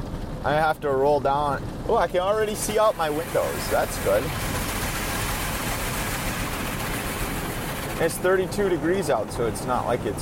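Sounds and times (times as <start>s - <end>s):
speech: 0.4s - 4.5s, 8.0s - 10.2s
water spraying and drumming against a car body in an automatic car wash: 2.4s - 8.9s.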